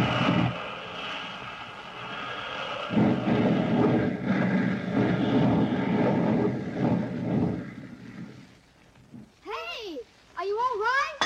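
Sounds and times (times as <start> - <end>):
rough sputtering airplane engine diving toward ground: 0.0 - 8.4.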